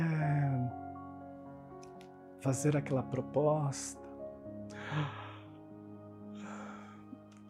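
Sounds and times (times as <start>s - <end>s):
speech: 2.4s - 4.0s, 4.9s - 5.2s
person yawning as a relaxation technique: 4.7s - 5.5s.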